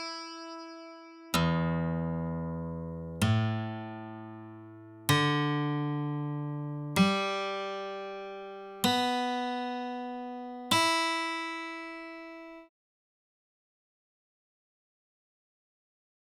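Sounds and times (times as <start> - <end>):
guitar open strings: 1.4 - 12.6.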